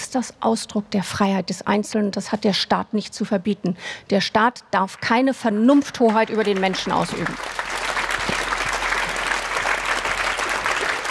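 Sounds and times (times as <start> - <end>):
speech: 0.1 - 7.8
audience applause: 6.1 - 11.0.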